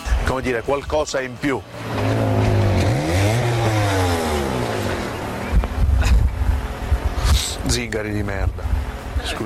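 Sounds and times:
speech: 0:00.4 - 0:02.2, 0:07.7 - 0:09.4
mopeds revving in a played-back recording: 0:01.6 - 0:07.6.

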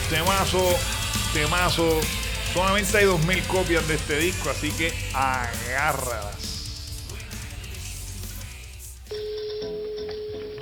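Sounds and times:
speech: 0:00.1 - 0:06.5
telephone ringing tone on an outgoing call: 0:09.1 - 0:10.6.

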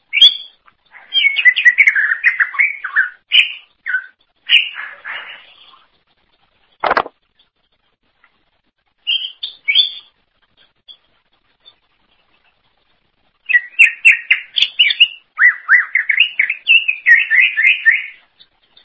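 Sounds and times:
greater green leafbird chirping and warbling song: 0:00.1 - 0:05.8, 0:09.0 - 0:10.1, 0:13.4 - 0:18.2.

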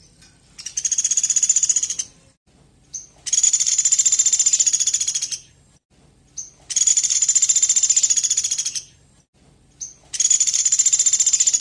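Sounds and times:
velvet-fronted nuthatch giving high-pitched pulsed trills: 0:00.6 - 0:02.2, 0:02.9 - 0:05.5, 0:06.4 - 0:09.0, 0:09.8 - 0:11.5.

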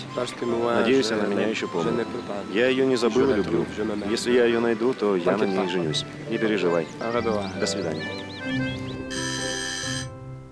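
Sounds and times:
speech: 0:00.2 - 0:08.9
electronic doorbell ringing: 0:09.1 - 0:10.2.

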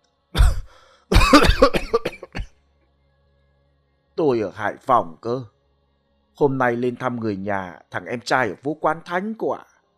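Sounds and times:
old man's long hacking rattling cough: 0:00.4 - 0:02.5
speech: 0:01.3 - 0:01.9, 0:04.2 - 0:05.6, 0:06.4 - 0:09.7.

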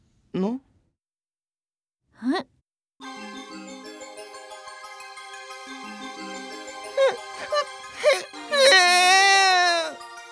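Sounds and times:
boy crying and sobbing, acted in a drama: 0:07.0 - 0:10.0.

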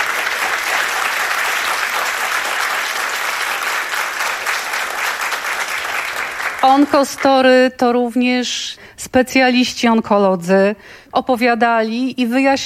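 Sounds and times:
audience applause for guests at an event: 0:00.0 - 0:07.2
speech: 0:06.6 - 0:12.6.

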